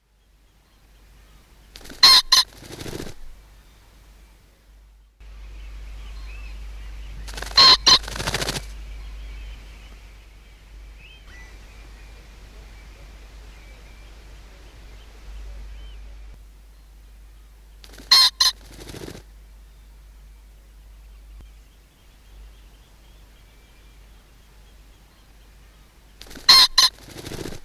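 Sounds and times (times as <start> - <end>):
pheasant calling: 0.0 - 4.6, 5.2 - 27.6
pheasant wings whirring: 1.7 - 3.4, 7.1 - 8.9, 17.8 - 19.3, 26.2 - 27.6.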